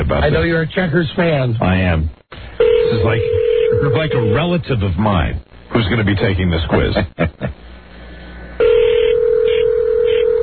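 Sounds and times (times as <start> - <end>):
speech: 0.0 - 2.2, 2.8 - 7.6
steady electronic phone-line tone through a receiver: 2.6 - 4.4, 8.6 - 10.4.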